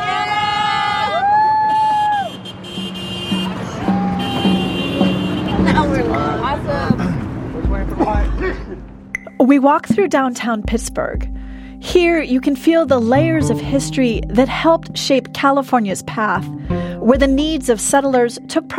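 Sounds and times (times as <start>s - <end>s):
crowd yelling and cheering: 0.0s - 2.5s, 3.3s - 5.4s
car horns honking in long overlapping blasts: 0.0s - 9.5s
traffic rumbling: 0.0s - 18.0s
speech: 9.5s - 18.7s.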